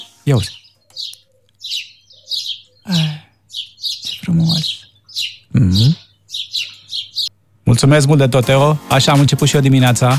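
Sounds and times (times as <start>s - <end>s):
birds chirping and singing: 0.0s - 10.1s
speech: 0.2s - 1.2s, 2.9s - 3.1s, 7.8s - 10.1s.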